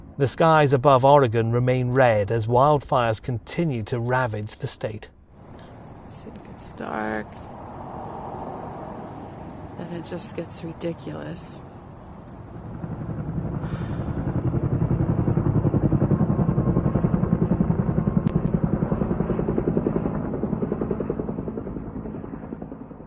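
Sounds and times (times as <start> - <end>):
speech: 0.2 - 5.2, 6.1 - 7.4, 9.8 - 11.7
helicopter rotor thumping overhead: 5.4 - 7.9, 8.5 - 21.8.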